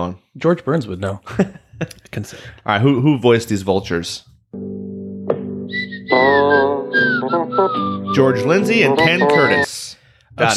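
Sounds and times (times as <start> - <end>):
speech: 0.0 - 4.8, 6.1 - 10.5
steady low musical backing: 4.5 - 9.7
person whistling a melody: 5.7 - 9.8.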